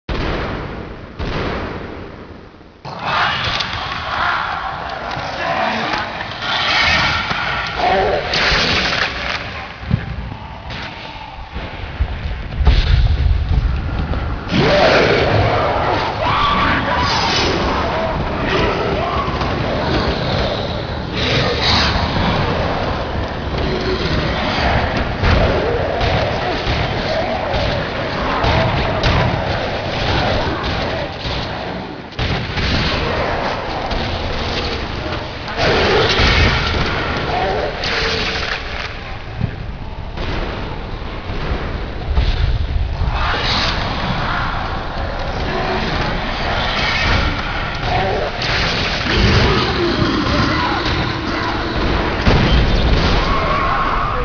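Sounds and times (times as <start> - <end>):
zombies ambience: 0.1 - 54.2.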